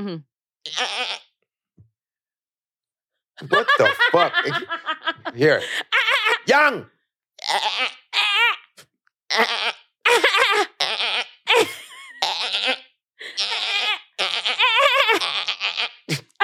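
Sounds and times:
speech: 0:00.0 - 0:01.2, 0:03.4 - 0:08.6, 0:09.3 - 0:09.8
goat bleating: 0:00.6 - 0:01.3, 0:07.4 - 0:16.1
laughter: 0:03.4 - 0:06.5, 0:11.5 - 0:12.1.

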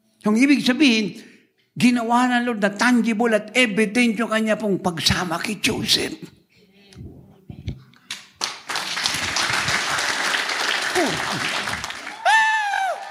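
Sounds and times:
speech: 0:00.2 - 0:06.4
large congregation applauding: 0:08.3 - 0:13.0.

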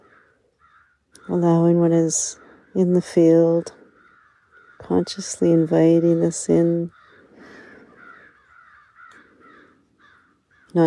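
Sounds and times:
crows cawing: 0:00.0 - 0:01.7, 0:03.8 - 0:05.1, 0:05.9 - 0:10.8
steady noisy outdoor background: 0:00.0 - 0:10.8
speech: 0:01.3 - 0:03.8, 0:04.8 - 0:07.0.

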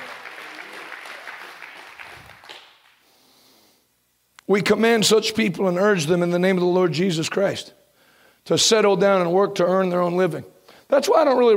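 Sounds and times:
crowd clapping: 0:00.0 - 0:03.0
speech: 0:04.5 - 0:07.8, 0:08.5 - 0:11.5.

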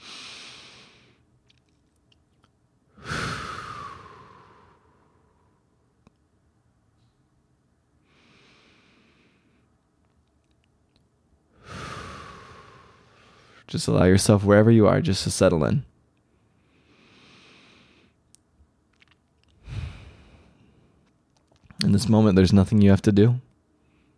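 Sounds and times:
slow deep breaths during a guided meditation: 0:00.0 - 0:01.3, 0:02.9 - 0:05.6, 0:08.0 - 0:09.8, 0:11.5 - 0:13.7, 0:16.2 - 0:18.2, 0:19.5 - 0:21.1, 0:23.8 - 0:24.1
speech: 0:13.7 - 0:15.9, 0:22.0 - 0:23.5.

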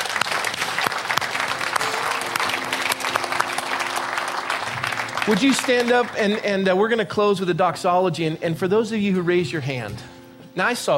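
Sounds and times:
audience applauding with many hands clapping: 0:00.0 - 0:06.8
speech: 0:05.3 - 0:10.9.

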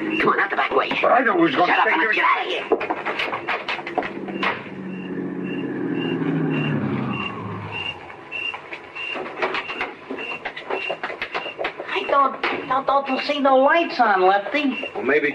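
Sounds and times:
speech: 0:00.2 - 0:03.5, 0:12.2 - 0:15.3
car engine passing: 0:03.1 - 0:10.5
high evenly spaced beeps: 0:03.4 - 0:13.0, 0:14.2 - 0:15.3.

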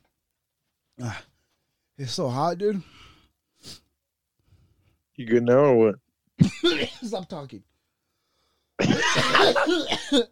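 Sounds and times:
speech: 0:01.0 - 0:01.3, 0:02.0 - 0:03.0, 0:03.6 - 0:03.8, 0:05.2 - 0:07.7, 0:08.8 - 0:10.2
person coughing in a harsh raspy fit: 0:06.4 - 0:07.0, 0:08.8 - 0:10.2.

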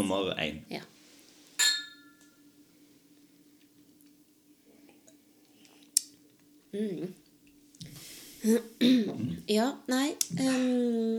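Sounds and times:
speech: 0:00.0 - 0:00.9, 0:06.7 - 0:07.2, 0:08.4 - 0:11.1
faint steady hum: 0:00.0 - 0:11.1
whisky glasses clinking in a toast: 0:01.6 - 0:02.4.

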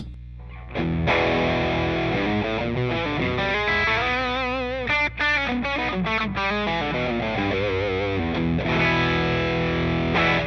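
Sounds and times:
electric guitar played through a distortion pedal with an LM833 op-amp chip: 0:00.0 - 0:10.4.

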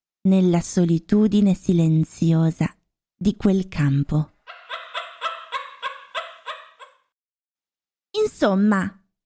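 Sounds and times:
speech: 0:00.2 - 0:04.3, 0:08.3 - 0:09.0
parrot cackling with laughter in a field: 0:04.4 - 0:07.1.

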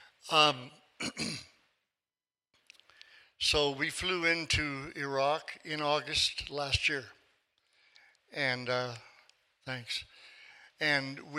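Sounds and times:
speech: 0:00.2 - 0:01.5, 0:03.4 - 0:07.2, 0:08.3 - 0:10.1, 0:10.8 - 0:11.3
throat clearing: 0:01.0 - 0:01.6.

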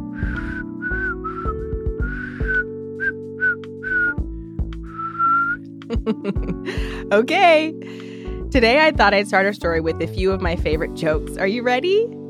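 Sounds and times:
soft sustained instrumental backing: 0:00.0 - 0:12.2
person whistling a light bouncy melody: 0:00.2 - 0:04.2, 0:04.9 - 0:05.6
speech: 0:05.9 - 0:12.2.

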